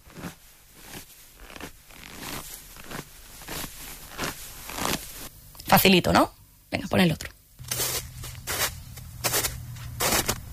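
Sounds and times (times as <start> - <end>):
foley footsteps crunching through snow: 0.0 - 5.3, 7.6 - 10.4
speech: 5.8 - 7.3.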